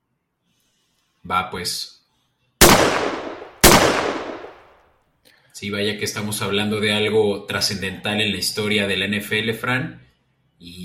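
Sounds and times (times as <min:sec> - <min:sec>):
speech: 0:01.2 - 0:02.0, 0:05.6 - 0:10.0
gunfire volley salute: 0:02.6 - 0:04.7.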